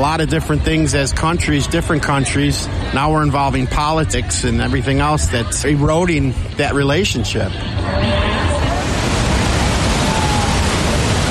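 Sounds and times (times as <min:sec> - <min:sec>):
speech: 0:00.0 - 0:08.6
large waterfall roaring: 0:07.8 - 0:11.2.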